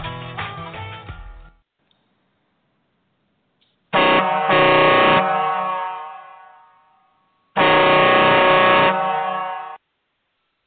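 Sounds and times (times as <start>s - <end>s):
truck air horn blasts: 3.9s - 9.8s.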